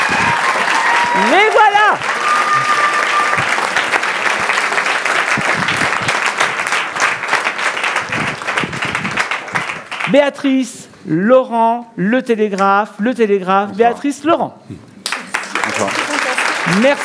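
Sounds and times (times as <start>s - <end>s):
faint cheer: 0.0s - 4.0s
large crowd applause: 0.0s - 10.1s, 15.0s - 17.0s
speech: 1.2s - 2.2s, 10.1s - 14.9s, 16.6s - 17.0s.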